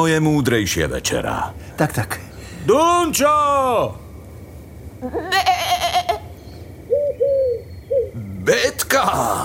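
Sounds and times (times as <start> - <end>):
speech: 0.0 - 4.0, 5.0 - 5.8, 8.5 - 9.4
sheep bleating: 5.1 - 6.2.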